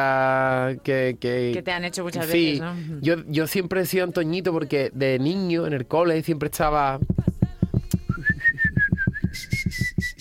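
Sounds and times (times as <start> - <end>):
speech: 0.0 - 7.3
steady rhythmic low thumping beat: 6.6 - 10.1
clear whistled melody: 8.1 - 10.1.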